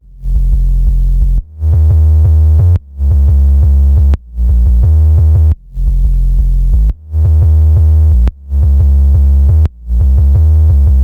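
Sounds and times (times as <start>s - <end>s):
sub bass: 0.0s - 11.0s.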